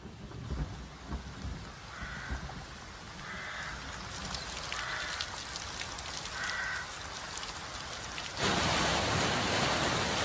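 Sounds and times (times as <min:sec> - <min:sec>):
heavy autumn rain falling: 0:00.0 - 0:10.2
crow cawing: 0:01.9 - 0:02.5, 0:03.2 - 0:03.9, 0:04.7 - 0:05.4, 0:06.3 - 0:07.0.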